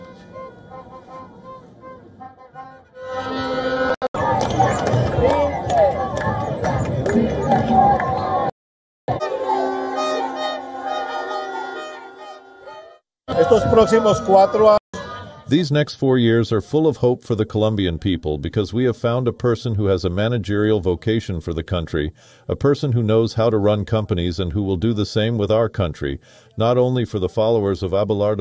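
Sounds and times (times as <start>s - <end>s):
car horns honking: 0.0s - 4.0s, 9.1s - 13.0s
dense crowd of election supporters cheering and shouting at a street celebration in Colombia: 3.5s - 8.5s, 9.1s - 15.5s
speech: 13.5s - 14.8s, 15.5s - 28.3s.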